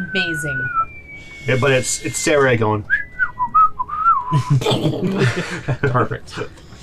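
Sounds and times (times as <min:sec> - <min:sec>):
person whistling a descending tone imitating a falling bomb: 0:00.0 - 0:04.5
speech: 0:00.1 - 0:03.0, 0:04.3 - 0:06.6
laughter: 0:04.3 - 0:06.6.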